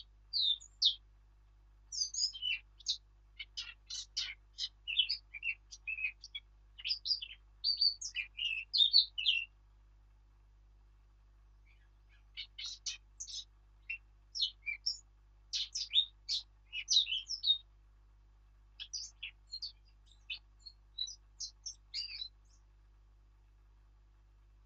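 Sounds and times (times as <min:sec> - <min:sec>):
Eurasian blackcap Sylvia atricapilla chattering warble song with whistles: 0:00.0 - 0:01.1, 0:01.9 - 0:09.6, 0:11.6 - 0:17.7, 0:18.7 - 0:22.7.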